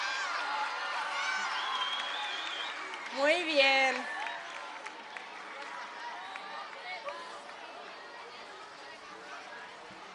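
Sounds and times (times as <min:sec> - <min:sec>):
audience applauding: 0:00.0 - 0:07.9
speech: 0:03.1 - 0:04.2.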